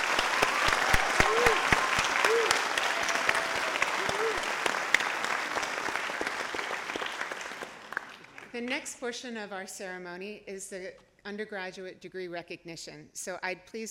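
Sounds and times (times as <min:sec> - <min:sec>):
audience applause at a graduation ceremony for PhD students: 0:00.0 - 0:08.6
vocal whoops: 0:00.4 - 0:04.6
speech: 0:08.6 - 0:13.8.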